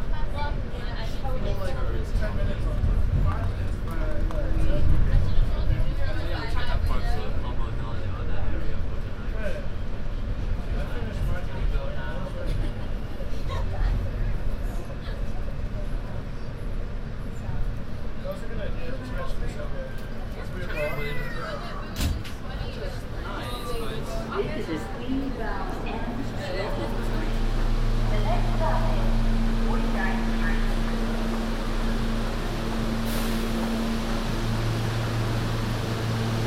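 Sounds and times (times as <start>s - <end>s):
heavy low rumble of a moving subway train: 0.0s - 36.4s
voices talking inside a subway train: 20.8s - 34.9s
steady low hum: 25.3s - 36.4s.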